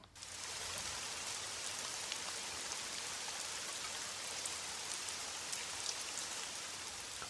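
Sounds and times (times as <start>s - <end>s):
steady rain: 0.0s - 7.2s.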